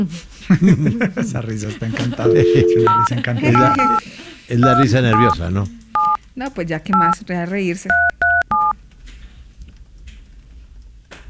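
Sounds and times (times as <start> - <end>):
speech: 0.0 - 5.8, 6.4 - 8.1
laughter: 0.0 - 6.1
telephone tones of a call being transferred: 2.2 - 4.0, 4.6 - 5.4, 6.0 - 6.2, 7.0 - 7.2, 7.9 - 8.8.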